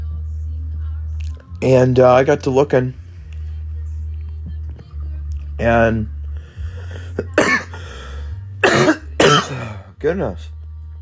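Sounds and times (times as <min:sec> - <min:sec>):
speech: 0:01.6 - 0:03.0, 0:05.6 - 0:06.2, 0:10.0 - 0:10.6
person with a persistent cough coughing in harsh bursts: 0:07.2 - 0:07.8, 0:08.6 - 0:09.9.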